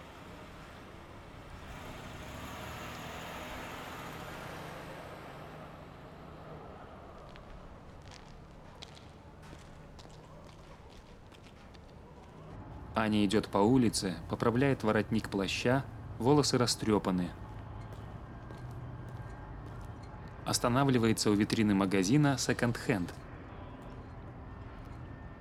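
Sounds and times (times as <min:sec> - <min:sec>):
police car driving past in the morning: 0:00.1 - 0:07.5
speech: 0:13.0 - 0:17.4, 0:20.5 - 0:23.2.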